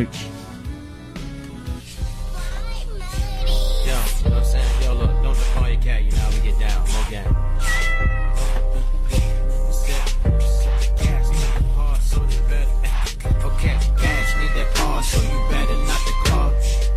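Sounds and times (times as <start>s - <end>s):
speech: 0.0s - 0.3s, 5.8s - 8.1s
steady thumping musical beat: 0.7s - 16.9s
cat meowing drawn-out and wavering: 7.6s - 8.4s, 14.1s - 14.7s.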